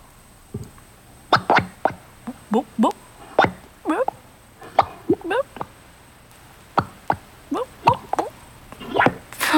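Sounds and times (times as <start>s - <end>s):
mud bubbles popping: 1.3s - 5.8s, 6.6s - 9.3s
speech: 2.5s - 3.0s.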